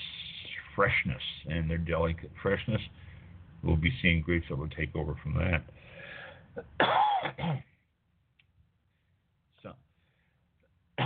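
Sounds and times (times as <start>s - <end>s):
speech: 0.8s - 7.7s, 9.6s - 9.8s
person clearing throat: 6.6s - 7.8s
person coughing: 6.6s - 7.8s.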